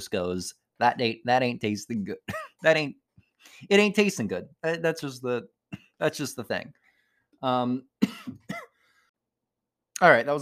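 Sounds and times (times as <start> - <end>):
speech: 0.0 - 6.8, 7.4 - 8.6, 10.0 - 10.4
person coughing fit: 2.2 - 2.6, 8.0 - 8.8.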